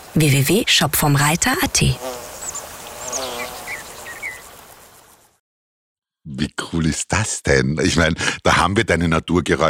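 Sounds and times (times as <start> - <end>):
speech: 0.1 - 2.2, 6.7 - 9.6
flying insect buzzing: 1.6 - 5.4.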